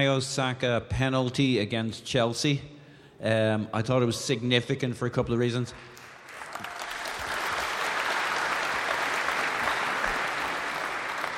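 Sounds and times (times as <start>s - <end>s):
speech: 0.0s - 6.0s
audience applauding: 5.9s - 11.3s.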